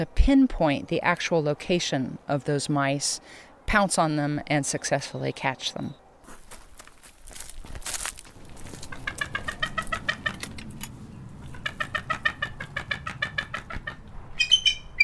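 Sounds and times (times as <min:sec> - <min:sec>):
speech: 0:00.0 - 0:06.0
soft rustling: 0:06.2 - 0:09.1
female bald eagle giving high thin chattering calls: 0:08.7 - 0:10.6, 0:11.4 - 0:15.0.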